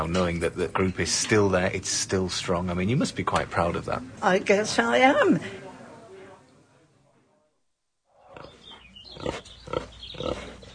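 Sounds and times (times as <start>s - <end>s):
speech: 0.0s - 5.6s
Berkshire pig grunting: 8.2s - 10.7s.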